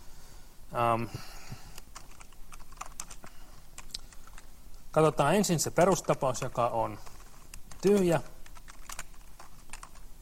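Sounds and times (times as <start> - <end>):
speech: 0.7 - 1.6, 5.0 - 7.1, 7.8 - 8.3
typing on a computer keyboard: 1.7 - 4.5, 5.8 - 10.1.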